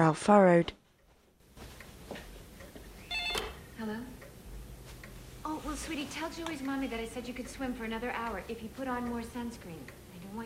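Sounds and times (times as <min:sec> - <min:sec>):
speech: 0:00.0 - 0:00.8, 0:05.6 - 0:10.4
telephone ringing with electronic trills: 0:03.0 - 0:03.7.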